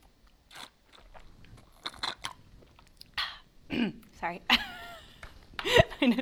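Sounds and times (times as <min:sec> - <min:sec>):
slurping through a juice box straw: 0:00.5 - 0:03.2
speech: 0:03.8 - 0:04.8, 0:05.6 - 0:06.2.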